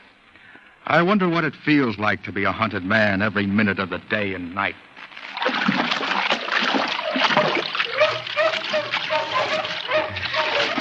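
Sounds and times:
speech: 0.9 - 4.9
water splashing and rushing: 5.2 - 10.8
bloodhounds baying and barking in pursuit: 6.9 - 10.8.

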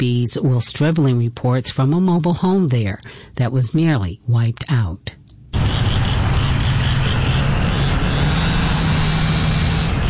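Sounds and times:
speech: 0.0 - 5.2
truck engine rumble at cleanup site: 5.5 - 10.0
saw running at cleanup site: 5.6 - 10.0.

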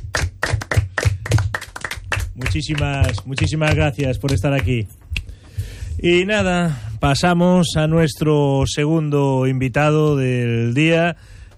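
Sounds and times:
applause from a small group, hand claps: 0.0 - 5.4
speech: 2.4 - 5.0, 6.0 - 11.4.

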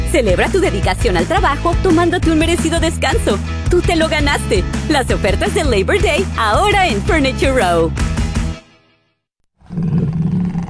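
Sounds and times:
speech: 0.1 - 8.2
jaguar roaring: 9.6 - 10.6.

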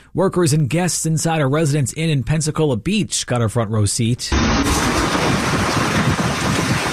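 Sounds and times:
speech: 0.2 - 5.7
hurricane wind and heavy rain around a beach hotel during a Category 2 landfall: 4.4 - 6.9.

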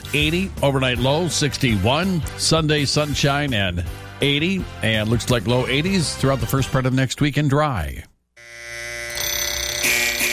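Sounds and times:
speech: 0.1 - 8.1
snooze alarm electronic tone turning into a pulsing buzz: 8.4 - 10.3.

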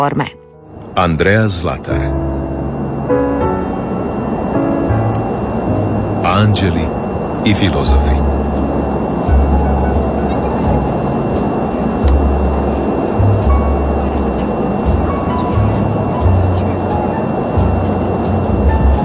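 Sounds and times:
speech: 0.0 - 0.4, 1.0 - 2.4, 6.3 - 8.3
night train rumbling along rails heard from on board: 0.7 - 19.0.

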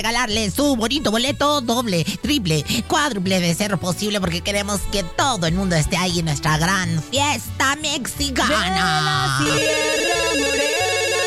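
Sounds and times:
speech: 0.0 - 10.5
telephone ringing with an electronic warbling ring: 9.4 - 11.2.

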